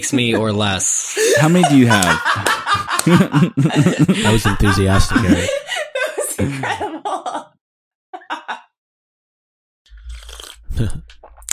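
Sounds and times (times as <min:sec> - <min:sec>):
speech: 0:00.0 - 0:05.7, 0:06.4 - 0:07.6, 0:10.8 - 0:11.2
laughter: 0:00.0 - 0:07.5, 0:08.2 - 0:08.6
person slurping tea: 0:09.9 - 0:11.5.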